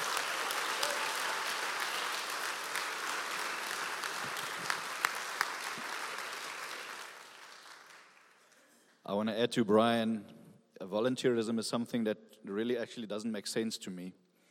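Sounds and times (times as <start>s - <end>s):
large audience applause: 0.0s - 8.8s
sharper individual claps: 0.0s - 8.9s
speech: 9.1s - 14.2s.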